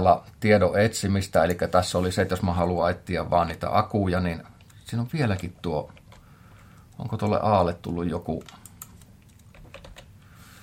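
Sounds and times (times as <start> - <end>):
speech: 0.0 - 6.0, 7.0 - 8.6
faint steady hum: 0.0 - 10.6
computer keyboard key clicks typing a search term: 8.4 - 10.1.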